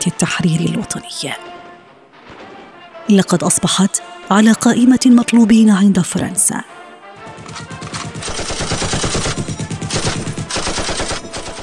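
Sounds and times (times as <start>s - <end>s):
speech: 0.0s - 1.5s, 3.1s - 6.8s
rapid automatic gunfire: 7.2s - 11.6s.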